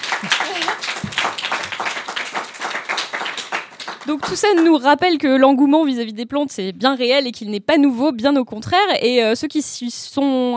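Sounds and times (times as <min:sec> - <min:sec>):
laughter: 0:00.0 - 0:01.2
small group clapping their hands: 0:00.0 - 0:05.0
speech: 0:04.1 - 0:10.5.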